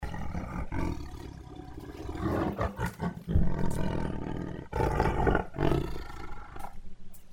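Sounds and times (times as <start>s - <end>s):
tiger click growl: 0.0s - 6.8s.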